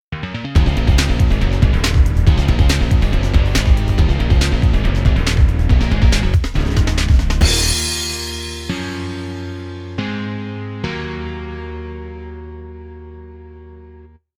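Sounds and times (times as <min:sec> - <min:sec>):
rock music intro: 0:00.2 - 0:10.8.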